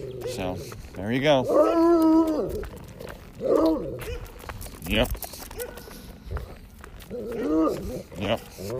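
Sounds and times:
speech: 0.0s - 2.8s, 3.4s - 4.3s, 4.9s - 5.2s, 7.1s - 8.7s
excited husky dog giving whiny howling calls: 1.4s - 4.4s, 7.0s - 8.7s.

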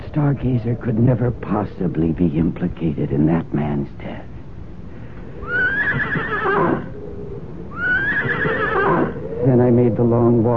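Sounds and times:
speech: 0.2s - 4.3s, 9.6s - 10.5s
horse neighing: 5.4s - 7.0s, 7.7s - 10.0s.

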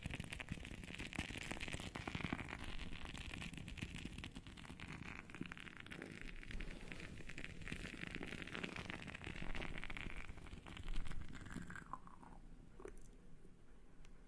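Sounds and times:
bath bomb fizzing with a dense crackling hiss: 0.0s - 13.1s.

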